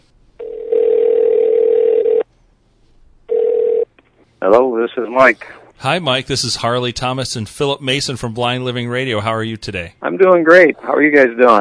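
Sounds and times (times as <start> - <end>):
loud steady telephone line tone: 0.4 - 2.2, 3.3 - 3.9
speech: 4.4 - 11.5.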